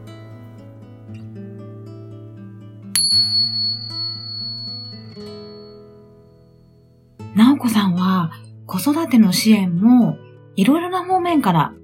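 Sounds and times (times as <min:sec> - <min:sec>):
bright bell chime: 0:03.0 - 0:06.4
speech: 0:07.4 - 0:11.8.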